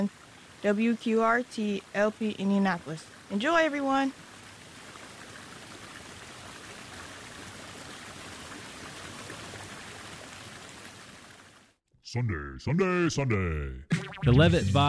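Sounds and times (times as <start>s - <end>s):
speech: 0.0s - 4.2s, 12.1s - 14.8s
creek water rushing and babbling: 0.0s - 11.8s.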